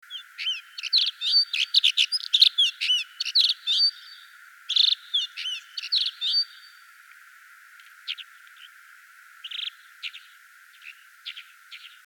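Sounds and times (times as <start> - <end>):
Alpine accentor Prunella collaris singing: 0.0 - 6.9, 9.4 - 12.0.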